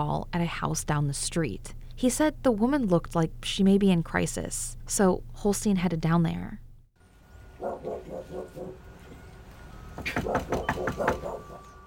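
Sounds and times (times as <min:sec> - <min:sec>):
speech: 0:00.0 - 0:06.6, 0:07.6 - 0:08.8, 0:10.0 - 0:11.5
knocking on a front door: 0:10.1 - 0:11.3.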